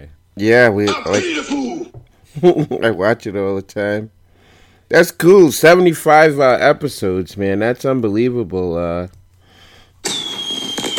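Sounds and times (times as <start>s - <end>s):
speech: 0.0s - 4.2s, 4.9s - 9.2s
firework set off in a studio hissing and crackling: 10.0s - 10.9s
high steady firework whistle: 10.0s - 10.9s.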